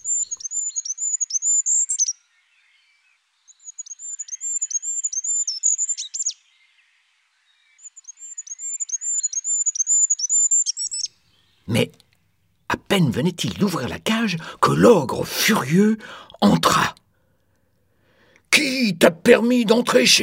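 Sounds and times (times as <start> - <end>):
small caged bird twittering: 0.0 - 2.4, 3.4 - 6.5, 7.8 - 12.7
speech: 12.9 - 17.0, 19.0 - 20.2.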